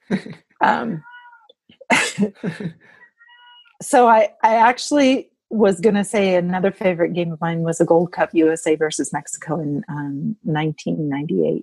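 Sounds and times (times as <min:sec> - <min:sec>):
speech: 0:00.1 - 0:01.1, 0:02.2 - 0:03.0, 0:03.8 - 0:11.6
old cat crying: 0:01.0 - 0:01.5, 0:03.1 - 0:03.7.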